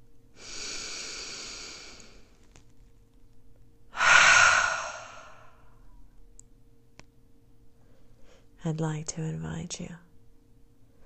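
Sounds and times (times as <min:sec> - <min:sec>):
slow breathing during a guided meditation: 0:00.4 - 0:02.5, 0:03.9 - 0:05.8
speech: 0:08.6 - 0:10.1.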